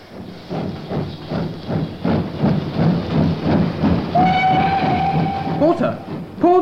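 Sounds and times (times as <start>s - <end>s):
train departing from station with rhythmic chugging clatter: 0.0s - 6.6s
long train whistle: 4.1s - 6.2s.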